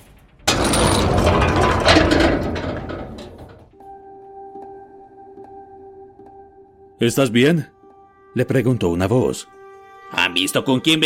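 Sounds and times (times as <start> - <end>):
bolt grinding and rattling into place: 0.0 - 3.8
heavy metal door banging shut: 0.0 - 3.8
speech: 7.0 - 7.7, 8.4 - 9.6, 10.2 - 11.0.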